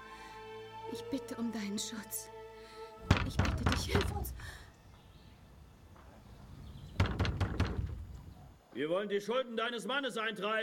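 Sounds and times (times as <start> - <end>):
speech: 0.9 - 2.4, 3.0 - 4.6, 8.8 - 10.6
heavy pounding on a wooden door by debt collectors: 3.0 - 4.6, 6.9 - 8.4.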